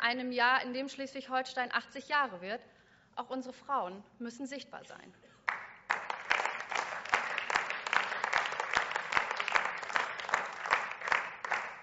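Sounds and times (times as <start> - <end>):
speech: 0.0 - 5.3
audience applause in a large room: 5.5 - 11.8.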